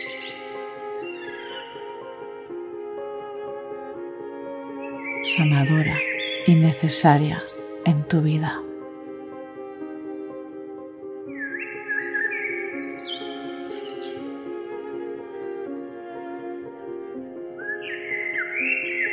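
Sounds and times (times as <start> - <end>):
birds whistling and trilling: 0.0 - 1.8, 4.8 - 7.8, 11.3 - 14.4, 17.6 - 19.1
soft sustained music: 0.0 - 19.1
speech: 5.2 - 8.6.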